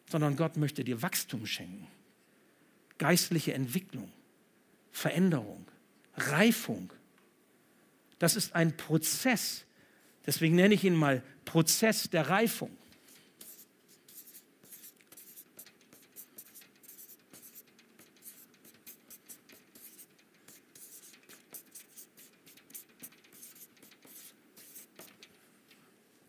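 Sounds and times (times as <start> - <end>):
speech: 0.1 - 2.0, 3.0 - 4.2, 4.9 - 7.0, 8.2 - 9.7, 10.3 - 12.8
chalk-like calligraphic handwriting on a board: 12.9 - 25.4.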